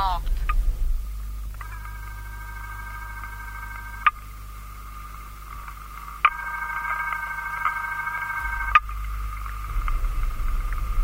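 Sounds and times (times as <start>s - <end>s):
steady low hum on the telephone line: 0.0s - 11.0s
telephone ringing unanswered on a call placed through an operator: 1.6s - 9.8s.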